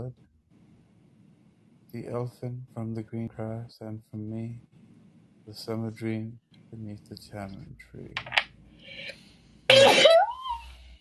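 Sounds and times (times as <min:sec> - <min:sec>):
speech: 0:01.9 - 0:04.8, 0:05.5 - 0:09.2
person sneezing: 0:09.7 - 0:10.3.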